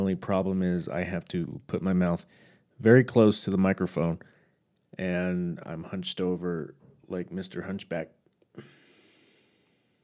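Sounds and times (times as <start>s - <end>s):
speech: 0.1s - 8.8s
soft airy exhale through the nose: 8.6s - 10.0s.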